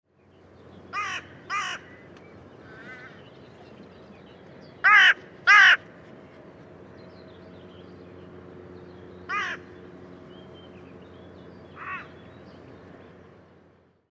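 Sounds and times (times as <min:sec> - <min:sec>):
Carrion crow Corvus corone cawing: 0:00.9 - 0:03.2, 0:04.8 - 0:05.8, 0:09.3 - 0:09.7, 0:11.8 - 0:12.2.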